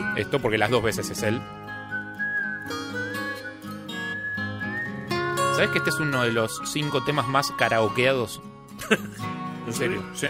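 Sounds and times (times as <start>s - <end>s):
whistled melody: 0.0s - 8.5s
speech: 0.2s - 1.6s, 5.6s - 10.2s.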